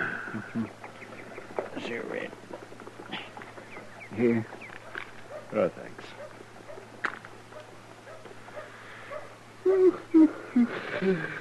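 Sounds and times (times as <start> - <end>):
low steady hum: 0.0 - 11.3
speech: 0.4 - 0.8, 1.9 - 2.7, 4.2 - 4.6, 5.5 - 6.2, 9.7 - 11.3
dog giving soft whimpering whines: 9.1 - 11.3.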